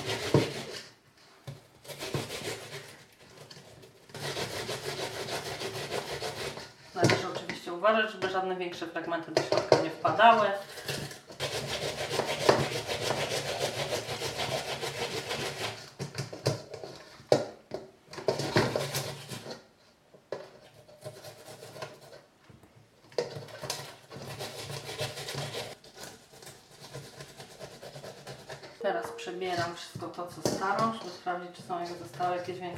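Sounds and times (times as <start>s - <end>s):
onion being grated on a grater: 0.0s - 1.0s, 1.8s - 7.4s, 9.4s - 17.1s, 18.2s - 19.7s, 20.6s - 22.2s, 23.2s - 28.8s, 29.6s - 32.7s
speech: 7.9s - 10.8s, 30.0s - 32.7s.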